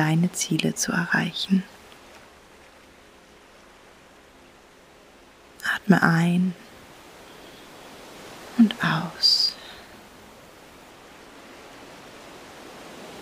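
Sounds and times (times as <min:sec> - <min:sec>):
speech: 0:00.0 - 0:01.7, 0:05.9 - 0:06.6, 0:08.6 - 0:09.4
steady soft wash of ocean surf: 0:00.0 - 0:13.1.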